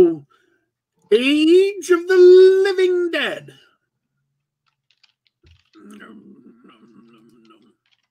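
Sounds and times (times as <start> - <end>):
speech: 1.1 - 3.6
typing on a computer keyboard: 4.6 - 6.0, 7.0 - 8.1.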